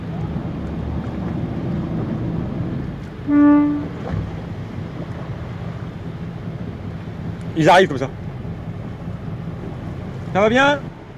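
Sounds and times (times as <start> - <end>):
dive boat engine rumbling: 0.0 - 11.1
water: 0.0 - 11.1
wind: 0.0 - 11.1
dive boat horn blast: 3.2 - 4.3
speech: 7.6 - 8.3, 10.3 - 10.9.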